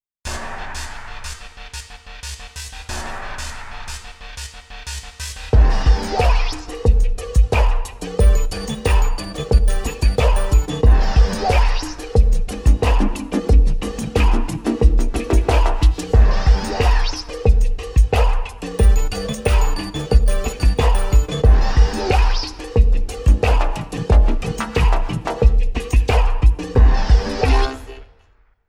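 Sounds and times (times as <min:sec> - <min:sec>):
techno music on a synthesizer: 0:05.6 - 0:28.0.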